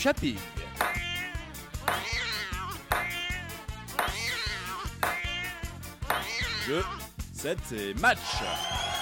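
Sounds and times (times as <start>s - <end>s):
speech: 0.0s - 0.9s, 6.7s - 8.9s
cat meowing in a jingle: 0.8s - 5.6s.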